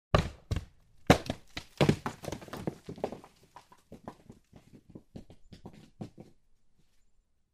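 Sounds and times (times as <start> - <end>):
large rock falling from a cliff and rolling down: 0.1 - 6.3.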